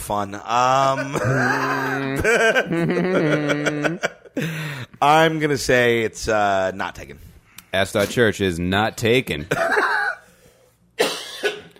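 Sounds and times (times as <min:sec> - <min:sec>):
speech: 0:00.1 - 0:10.1
person coughing hard in a coughing fit: 0:01.0 - 0:02.0, 0:09.5 - 0:10.3, 0:11.0 - 0:11.7
laughter: 0:01.0 - 0:04.6.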